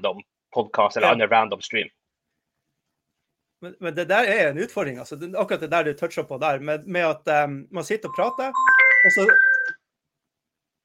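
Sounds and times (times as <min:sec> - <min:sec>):
speech: 0:00.0 - 0:02.0, 0:03.6 - 0:09.4
mobile phone ringing with a short steady electronic tone: 0:08.1 - 0:09.9.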